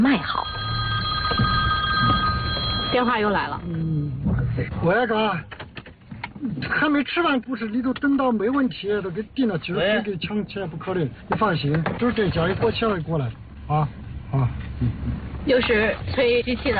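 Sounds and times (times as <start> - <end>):
mobile phone ringing with steady electronic tones: 0.0 - 3.6
speech: 0.1 - 0.5, 2.9 - 5.6, 6.4 - 16.7.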